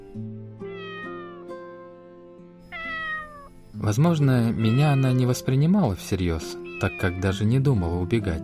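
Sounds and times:
cat meowing: 0.6s - 1.5s, 2.7s - 3.6s, 4.5s - 5.4s, 6.4s - 7.4s
speech: 3.8s - 8.4s.

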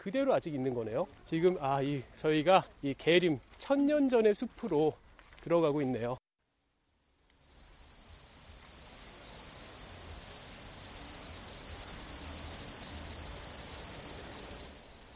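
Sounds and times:
speech: 0.0s - 6.2s
insects humming in a night forest: 6.4s - 15.1s.

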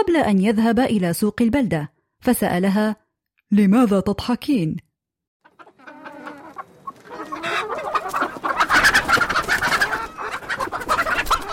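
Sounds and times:
speech: 0.0s - 4.9s
chickens clucking: 5.4s - 11.5s.

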